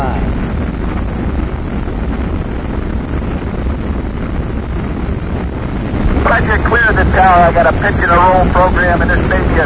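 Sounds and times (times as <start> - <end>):
rocket engines roaring during liftoff: 0.0 - 9.6
voices: 6.1 - 9.6.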